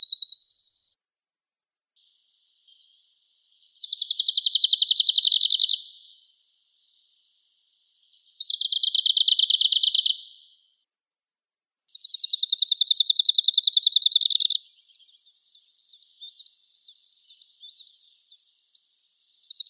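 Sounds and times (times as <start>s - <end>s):
Arctic warbler singing: 0.0s - 0.4s, 3.6s - 5.9s, 8.1s - 10.3s, 11.9s - 19.6s.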